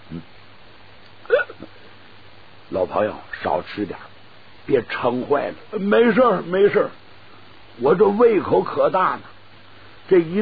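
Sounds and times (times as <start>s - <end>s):
speech: 0.1s - 0.4s, 2.7s - 4.1s, 4.7s - 7.0s, 7.8s - 9.3s, 10.1s - 10.4s
voice imitating burping after overeating: 1.3s - 1.8s.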